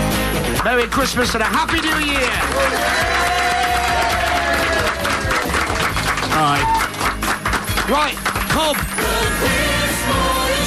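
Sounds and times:
speech: 0:00.6 - 0:03.3, 0:06.4 - 0:06.9, 0:07.9 - 0:10.6
audience applause: 0:00.6 - 0:09.7
crowd cheering: 0:01.5 - 0:09.8.

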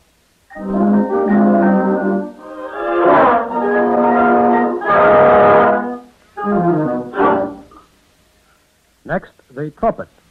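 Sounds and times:
flutes and clarinets playing a melody: 0:00.5 - 0:07.8
speech: 0:09.2 - 0:10.2.

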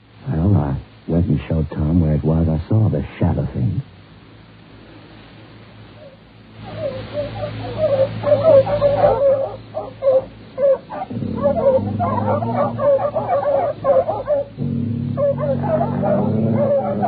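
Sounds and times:
speech: 0:01.3 - 0:04.0
dogs barking: 0:06.0 - 0:17.0.

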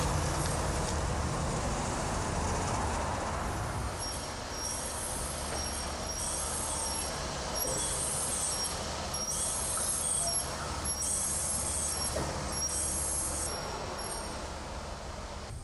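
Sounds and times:
Cutlass Supreme car engine and tires driving into an underground parking garage: 0:00.0 - 0:15.6
faint high-pitched squeals: 0:04.0 - 0:14.5.

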